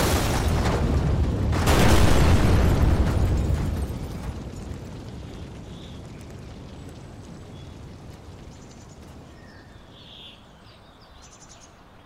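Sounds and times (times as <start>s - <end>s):
explosion of a small shed: 0.0s - 8.4s
crackling debris from shed explosion: 0.0s - 10.2s.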